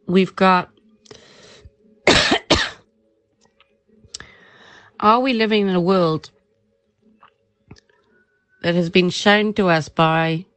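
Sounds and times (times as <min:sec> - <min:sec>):
speech: 0:00.1 - 0:01.2, 0:05.0 - 0:06.4, 0:08.6 - 0:10.5
person coughing from a tickle in the throat: 0:02.0 - 0:02.8.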